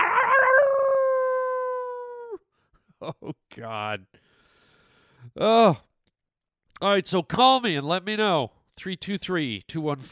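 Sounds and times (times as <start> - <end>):
wolf howling: 0.0 - 2.4
speech: 3.0 - 4.3, 5.2 - 5.9, 6.8 - 10.1.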